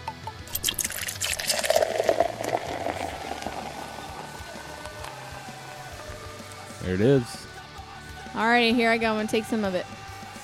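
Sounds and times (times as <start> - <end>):
liquid pouring from a bottle into a glass: 0.5 - 6.2
speech: 6.9 - 7.5, 8.4 - 10.0.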